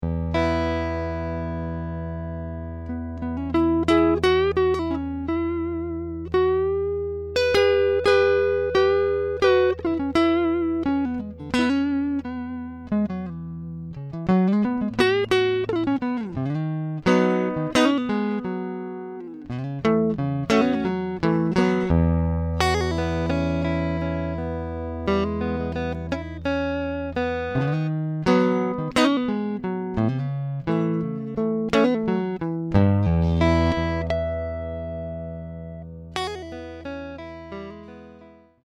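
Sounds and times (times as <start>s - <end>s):
Fender Vibro King amplifier: 0.0s - 38.6s.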